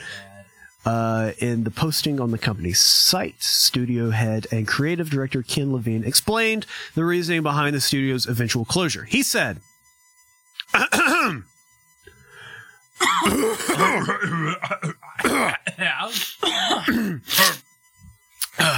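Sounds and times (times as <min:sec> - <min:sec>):
speech: 0:00.8 - 0:09.7, 0:10.7 - 0:11.5, 0:13.0 - 0:17.6, 0:18.6 - 0:18.7
coughing: 0:10.6 - 0:11.5, 0:13.0 - 0:17.7, 0:18.4 - 0:18.7
throat clearing with groaning rasps: 0:10.6 - 0:11.5, 0:13.0 - 0:17.6, 0:18.4 - 0:18.7.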